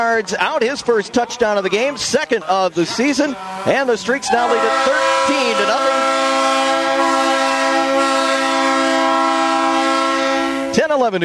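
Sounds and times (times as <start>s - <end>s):
speech: 0.0s - 6.5s, 10.8s - 11.2s
train whistle blowing: 4.3s - 10.8s.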